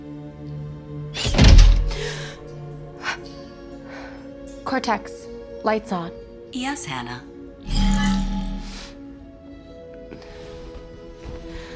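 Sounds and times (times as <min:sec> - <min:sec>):
lock on a bedroom door bolting shut: 0:01.2 - 0:02.4
speech: 0:04.7 - 0:07.9.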